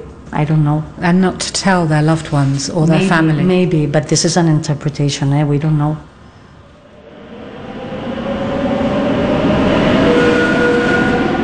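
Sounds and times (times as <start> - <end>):
speech: 0.3 - 6.1
train rolling along rails north of Madrid toward Alcobendas: 6.6 - 11.4.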